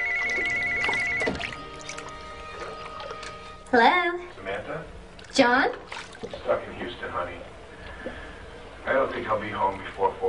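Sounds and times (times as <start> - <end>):
cordless phone ringing with electronic trill in a bathroom: 0.0 - 1.8
splashing running water in a bathtub: 0.0 - 3.6, 5.8 - 6.5
speech: 3.7 - 8.2, 8.9 - 10.2.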